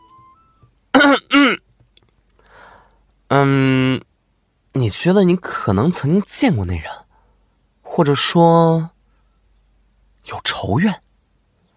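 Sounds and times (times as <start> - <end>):
man coughing: 0.9 - 1.6
speech: 3.3 - 4.1, 4.8 - 7.0, 8.0 - 8.9, 10.3 - 11.0.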